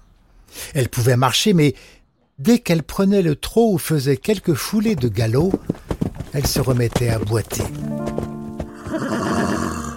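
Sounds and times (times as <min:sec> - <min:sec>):
speech: 0:00.7 - 0:05.7, 0:06.3 - 0:08.0
faint hoof-like knocks: 0:04.4 - 0:09.1
horse neighing loudly with whinny and fluttering snorts: 0:08.7 - 0:09.9.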